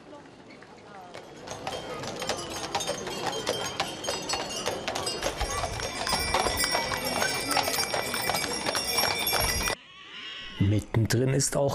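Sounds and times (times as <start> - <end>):
voices murmuring: 0.0 - 11.7
horse hooves clip-clopping on pavement in a procession: 0.2 - 9.8
faint jingling: 0.9 - 9.8
carriage wheels: 1.1 - 9.8
speech: 11.0 - 11.7.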